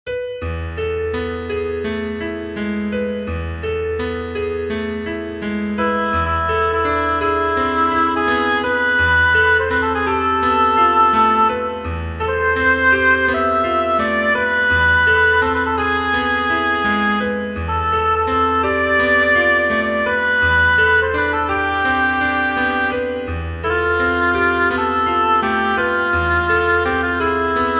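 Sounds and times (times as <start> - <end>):
piano: 0.1 - 27.7
oboe: 5.8 - 27.7.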